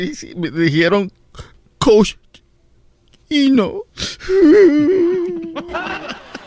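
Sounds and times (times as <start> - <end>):
speech: 0.0 - 2.3, 3.3 - 6.2
person wailing and sobbing: 4.3 - 5.9
laughter: 4.6 - 6.4.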